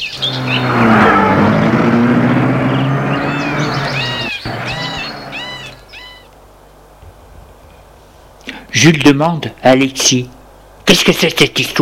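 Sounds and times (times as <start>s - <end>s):
birds chirping and tweeting: 0.0s - 6.9s
car engine humming as the vehicle pulls away: 0.0s - 6.9s
speech: 0.2s - 1.0s, 8.8s - 11.8s.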